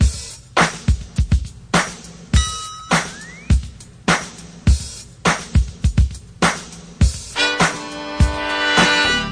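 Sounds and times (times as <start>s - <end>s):
drum loops: 0.0s - 9.3s.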